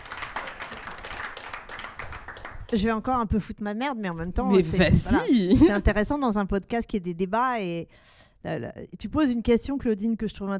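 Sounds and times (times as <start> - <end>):
group applauding during a debate: 0.0 - 3.2
speech: 2.7 - 10.5.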